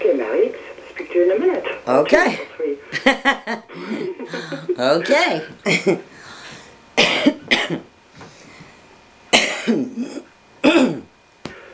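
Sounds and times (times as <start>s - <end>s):
speech: 1.2s - 6.1s
harsh throat clears and coughs: 7.0s - 7.9s, 9.3s - 11.1s.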